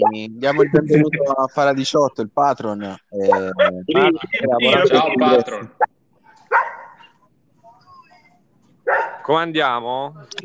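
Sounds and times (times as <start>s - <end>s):
laughter: 0.0s - 1.4s, 2.7s - 5.8s
speech: 0.0s - 5.9s, 8.9s - 10.4s
dog barking: 6.5s - 7.1s, 8.8s - 9.3s.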